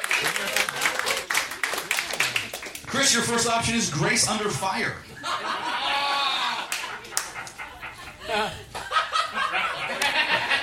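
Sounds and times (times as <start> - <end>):
laughter: 0.0 - 2.4, 5.0 - 10.6
people cheering and calling out: 0.0 - 2.6, 5.5 - 7.4
audience clapping: 0.0 - 2.9, 6.6 - 7.7, 9.9 - 10.4
speech: 2.9 - 5.6, 8.3 - 8.6.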